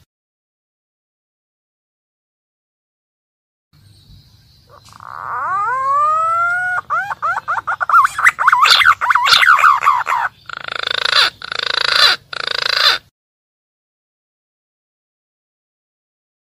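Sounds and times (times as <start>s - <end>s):
green pigeon calling, used as a lure for wild birds: 4.6s - 13.1s.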